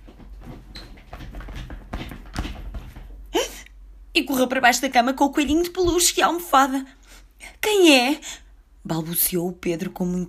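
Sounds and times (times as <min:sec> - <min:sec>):
shuffling: 0:00.0 - 0:03.3
wooden staircase creaking: 0:00.0 - 0:03.4
speech: 0:04.2 - 0:07.0, 0:07.7 - 0:10.2.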